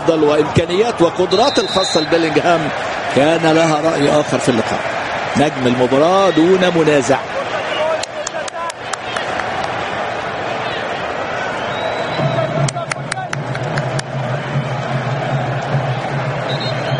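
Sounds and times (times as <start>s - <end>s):
speech: 0.0s - 7.4s
large crowd roaring and cheering: 0.0s - 16.9s
whistles: 1.3s - 2.2s, 11.6s - 12.6s, 16.5s - 16.9s
sharp claps: 7.9s - 9.8s, 12.3s - 14.2s.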